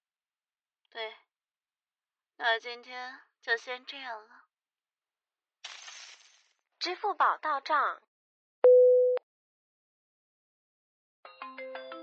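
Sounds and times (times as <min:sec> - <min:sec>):
speech: 0:01.0 - 0:01.2, 0:02.4 - 0:04.4, 0:06.8 - 0:08.1
short steady beep: 0:08.6 - 0:09.2.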